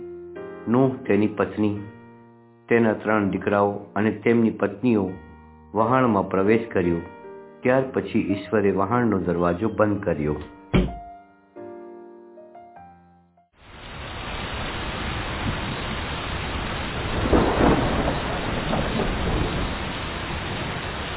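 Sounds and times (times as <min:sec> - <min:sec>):
speech: 0:00.7 - 0:02.0, 0:02.7 - 0:10.9
torrential rain: 0:13.6 - 0:21.1
thunder rumbling: 0:13.8 - 0:21.1.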